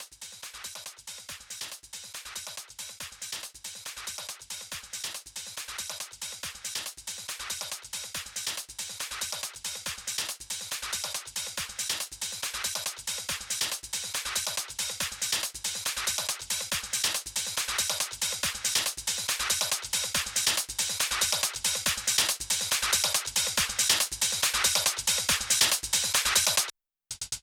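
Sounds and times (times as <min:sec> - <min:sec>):
drum and percussion loop fill at 140 BPM: 0:00.0 - 0:27.4.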